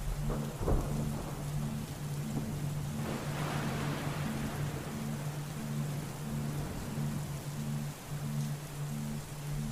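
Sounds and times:
faint pulsing low hum: 0.0s - 9.7s
steady rain pouring down: 0.0s - 9.7s
low rolling thunder: 0.2s - 1.6s, 2.3s - 8.0s.

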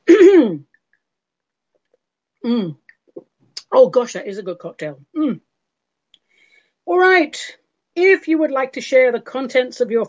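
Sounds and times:
person coughing: 0.0s - 0.6s
speech: 2.4s - 2.8s, 3.7s - 5.5s, 6.9s - 10.0s.

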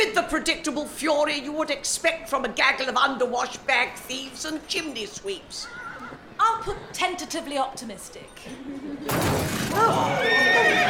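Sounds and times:
speech: 0.2s - 5.8s, 6.4s - 10.8s
broad noisy din: 9.1s - 10.8s
horses neighing in panic: 9.8s - 10.8s.

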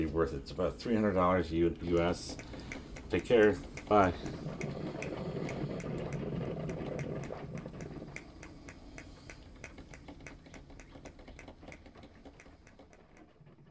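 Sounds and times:
speech: 0.0s - 5.1s
grind-and-brew drip coffee maker ticking: 0.9s - 13.6s.

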